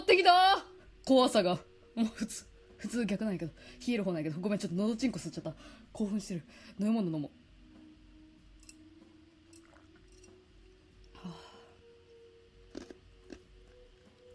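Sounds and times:
quiet hum: 0:00.0 - 0:14.3
speech: 0:00.1 - 0:07.4
chewing largely melted ice cubes: 0:09.5 - 0:10.3, 0:12.6 - 0:13.8.

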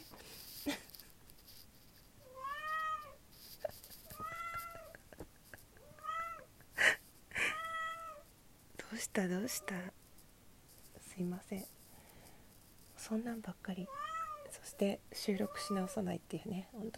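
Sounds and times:
house cat meowing: 0:02.2 - 0:03.2, 0:04.0 - 0:05.0, 0:05.8 - 0:06.5, 0:07.5 - 0:08.2, 0:13.9 - 0:14.5
speech: 0:09.2 - 0:09.9, 0:11.2 - 0:11.8, 0:13.1 - 0:14.0, 0:14.8 - 0:16.9.

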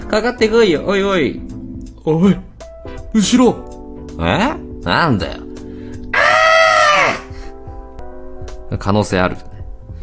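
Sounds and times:
speech: 0:00.1 - 0:02.5, 0:03.1 - 0:05.4, 0:08.7 - 0:09.5
person screaming turned away from the microphone: 0:06.2 - 0:07.4.

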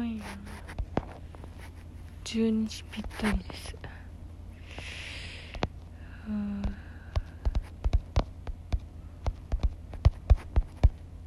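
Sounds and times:
speech: 0:02.3 - 0:03.8, 0:06.3 - 0:06.8
fingertips tapping a smartphone screen in rhythm game: 0:06.6 - 0:11.0.

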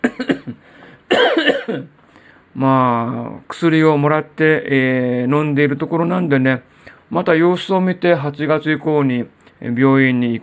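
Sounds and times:
man coughing: 0:00.0 - 0:02.0
speech: 0:02.6 - 0:10.4.

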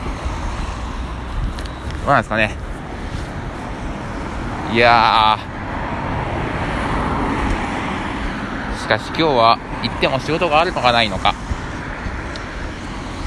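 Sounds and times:
cars going by on a nearby street: 0:00.0 - 0:13.2
speech: 0:02.1 - 0:02.7, 0:04.7 - 0:05.5, 0:08.9 - 0:11.4.

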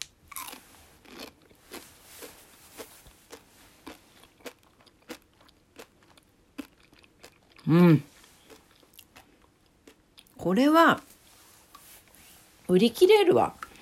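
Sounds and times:
chewing and biting a gummy pretzel candy: 0:00.3 - 0:10.4
speech: 0:07.7 - 0:08.1, 0:10.4 - 0:11.1, 0:12.7 - 0:13.6.

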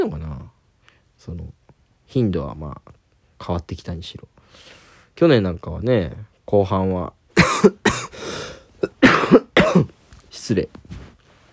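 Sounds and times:
speech: 0:01.2 - 0:07.8, 0:10.4 - 0:11.0
raspy breath: 0:04.4 - 0:05.2, 0:08.1 - 0:08.7
harsh throaty coughing fit: 0:07.4 - 0:10.0.

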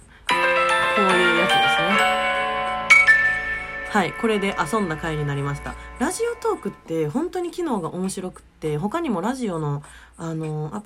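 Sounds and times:
short bright synthesized opening music jingle: 0:00.3 - 0:07.1
speech: 0:04.0 - 0:10.8.

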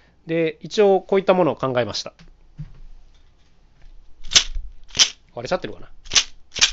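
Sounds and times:
speech: 0:00.2 - 0:02.3, 0:05.4 - 0:06.0
faint knock: 0:02.6 - 0:02.9
homemade aluminum can shaker filled with pull tabs struck against the ground: 0:04.2 - 0:05.2, 0:06.1 - 0:06.7.

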